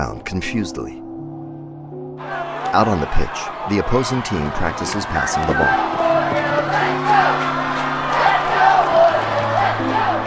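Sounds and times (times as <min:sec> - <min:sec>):
speech: 0:00.0 - 0:01.0, 0:02.3 - 0:06.1
large crowd cheering and shouting at a sports match: 0:02.2 - 0:10.2.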